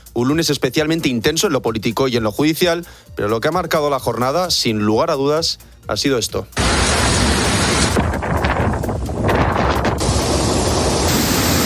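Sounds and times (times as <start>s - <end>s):
speech: 0.2s - 6.9s
heavy surf during a storm in Spain: 6.6s - 11.6s
storm wind in Spain: 6.6s - 11.6s.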